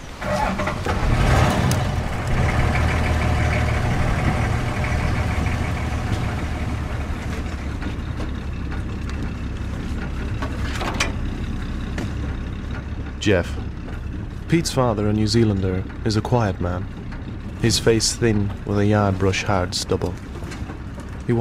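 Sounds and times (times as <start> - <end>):
vehicle engine rumbling while riding through the bush: 0.0 - 21.3
speech: 13.2 - 13.6, 14.5 - 17.0, 17.6 - 20.3.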